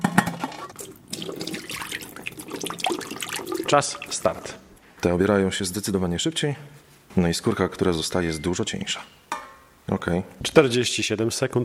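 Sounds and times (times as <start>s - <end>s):
water pouring and splashing from draining boiled jacket potatoes: 0.2s - 4.6s
speech: 3.7s - 9.2s, 9.9s - 11.6s.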